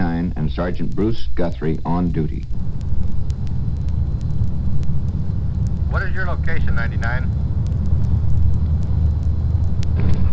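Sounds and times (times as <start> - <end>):
faint clicks and ticks: 0.0 - 10.3
speech: 0.6 - 2.7, 5.9 - 7.4
residential police patrol car engine rumbling inside the moving vehicle: 2.5 - 10.3.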